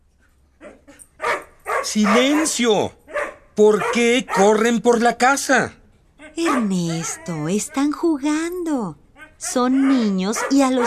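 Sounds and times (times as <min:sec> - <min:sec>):
dog barking: 0:00.6 - 0:05.2, 0:06.2 - 0:08.2, 0:09.1 - 0:10.8
speech: 0:01.8 - 0:03.0, 0:03.6 - 0:05.8, 0:06.4 - 0:10.8.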